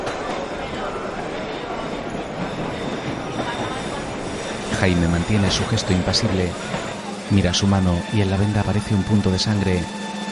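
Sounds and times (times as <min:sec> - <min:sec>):
subway train running heard from inside a metro car: 0:00.0 - 0:10.2
speech: 0:04.8 - 0:10.0.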